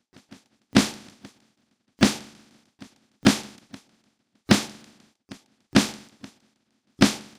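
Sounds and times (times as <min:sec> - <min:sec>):
drum: 0:00.2 - 0:01.4, 0:02.0 - 0:03.9, 0:04.5 - 0:06.4, 0:07.0 - 0:07.3.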